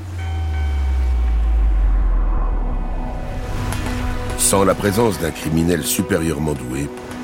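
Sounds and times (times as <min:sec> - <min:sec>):
ship's bell ringing on a ship in a storm at sea: 0:00.0 - 0:01.9
heavy deep rumble of rolling sea in a storm: 0:00.0 - 0:06.2
speech: 0:04.5 - 0:07.1.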